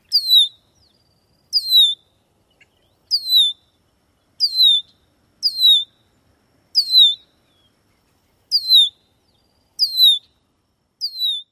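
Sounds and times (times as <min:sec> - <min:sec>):
male Red-winged Blackbird two-parted alarm whistles: 0:00.1 - 0:00.6, 0:01.5 - 0:02.0, 0:03.1 - 0:03.6, 0:04.4 - 0:06.0, 0:06.8 - 0:07.3, 0:08.5 - 0:09.0, 0:09.8 - 0:10.3, 0:11.0 - 0:11.5.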